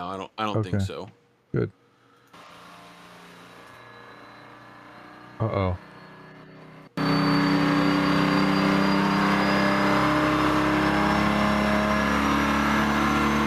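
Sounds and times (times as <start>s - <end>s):
speech: 0.0s - 1.8s, 5.4s - 5.9s
engine revving high on a test stand at a test facility: 3.6s - 13.4s.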